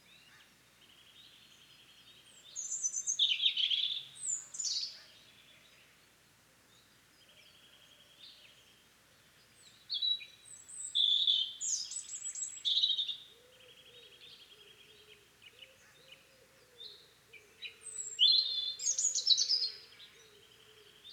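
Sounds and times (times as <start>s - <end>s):
European robin Erithacus rubecula singing high thin tinkling phrases: 1.1s - 5.4s, 9.6s - 17.0s, 17.6s - 21.1s.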